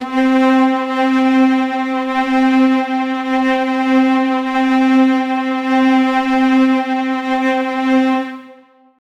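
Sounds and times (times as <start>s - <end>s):
epic cinematic staccato strings: 0.0s - 8.6s.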